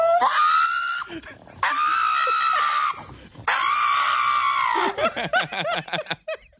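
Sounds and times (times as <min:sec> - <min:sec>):
small pug dog screaming during nail trim: 0:00.0 - 0:05.1
laughter: 0:04.8 - 0:06.5.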